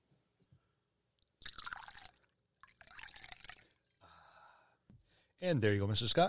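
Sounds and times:
drink poured into a glass as a refill: 0:01.4 - 0:03.9
speech: 0:05.4 - 0:06.2.

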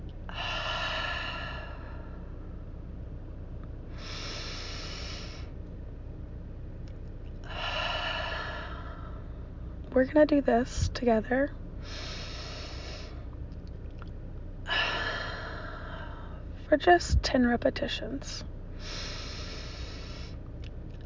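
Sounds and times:
deep breaths in through the nose and out through the mouth: 0:00.3 - 0:02.6, 0:03.9 - 0:05.6, 0:07.4 - 0:09.6, 0:11.8 - 0:13.3, 0:14.7 - 0:16.6, 0:18.7 - 0:20.4
speech: 0:10.0 - 0:11.6, 0:16.7 - 0:18.6.

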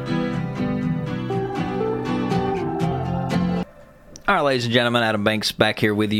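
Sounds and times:
pop song playing loudly: 0:00.2 - 0:04.3
speech: 0:04.3 - 0:06.1.

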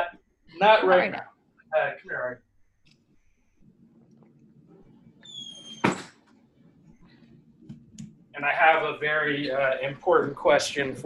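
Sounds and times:
speech: 0:00.6 - 0:02.5, 0:08.4 - 0:11.0
low murmur: 0:01.8 - 0:02.4, 0:07.8 - 0:11.0
door creaking on its hinges: 0:05.2 - 0:06.2
door shutting with a sharp thud: 0:05.6 - 0:06.2.

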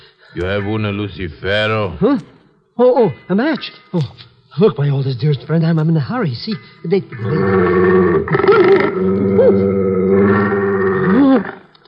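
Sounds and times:
speech: 0:00.3 - 0:11.5
female bloodhound growling: 0:07.1 - 0:11.7.

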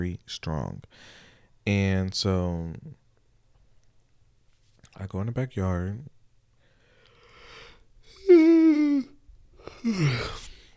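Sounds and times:
speech: 0:00.0 - 0:03.0, 0:05.0 - 0:06.2, 0:09.7 - 0:10.5
person yawning: 0:08.1 - 0:10.7.

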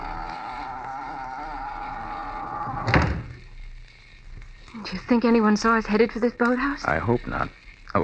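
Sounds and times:
door thudding shut: 0:02.8 - 0:03.4
speech: 0:04.9 - 0:08.0.

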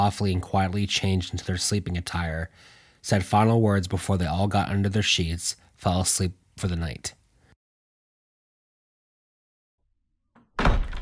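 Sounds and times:
speech: 0:00.0 - 0:07.2
storm door slamming shut: 0:10.4 - 0:11.0.

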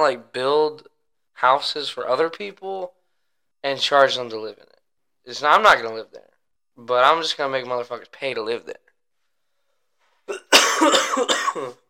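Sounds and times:
speech: 0:00.0 - 0:03.0, 0:03.6 - 0:08.8, 0:10.3 - 0:11.8
harsh chesty coughing from a long-lasting cough: 0:10.3 - 0:11.8.

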